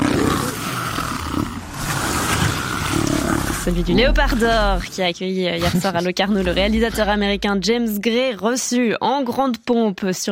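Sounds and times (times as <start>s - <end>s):
big cat roaring: 0.0s - 4.9s, 6.2s - 7.9s
speech: 3.7s - 10.3s.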